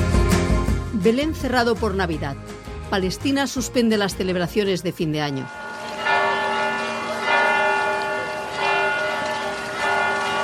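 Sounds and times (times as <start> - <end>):
speech: 1.0 - 5.6
church bells ringing in a peal: 4.3 - 10.4.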